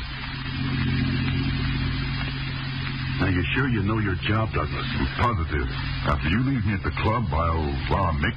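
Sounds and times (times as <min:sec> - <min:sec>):
car engine droning while driving: 0:00.0 - 0:08.3
speech: 0:03.2 - 0:08.3.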